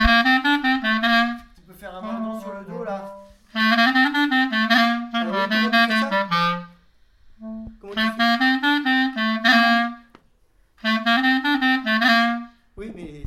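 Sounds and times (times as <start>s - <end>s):
clarinet playing a mordent on C: 0.0s - 10.2s, 10.8s - 12.6s.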